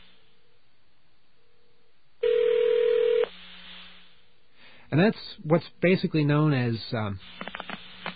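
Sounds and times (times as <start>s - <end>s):
hissy telephone line static from the connection: 0.0s - 1.3s, 2.1s - 8.1s
electronic telephone ring from an electronic switching system: 2.2s - 3.3s
speech: 4.9s - 7.5s.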